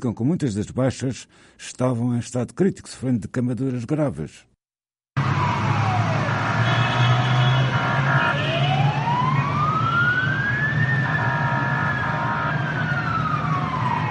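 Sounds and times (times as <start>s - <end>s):
speech: 0.0s - 4.5s
fire engine and ambulance sirens wailing: 5.2s - 14.1s
heavy traffic and engines rumbling: 5.2s - 14.1s.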